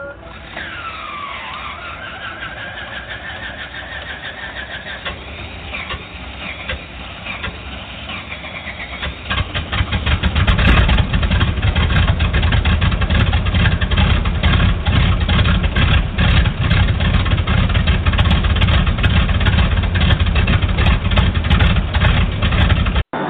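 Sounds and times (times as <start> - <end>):
engine cranking and idling: 0.0 - 23.1.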